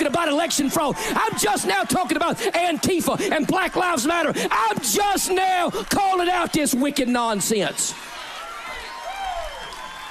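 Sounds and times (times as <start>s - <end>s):
church audience applause: 0.0s - 10.1s
speech: 0.2s - 8.2s.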